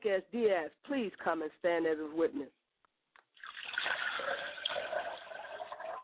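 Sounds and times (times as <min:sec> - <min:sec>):
speech: 0:00.0 - 0:02.6
liquid poured out as a libation: 0:03.3 - 0:06.0.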